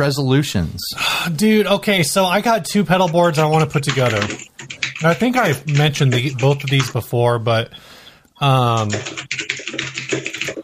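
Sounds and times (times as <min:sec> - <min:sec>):
speech: 0:00.0 - 0:07.8, 0:08.4 - 0:09.4
furious typing on a computer keyboard: 0:02.9 - 0:07.0, 0:08.6 - 0:10.6.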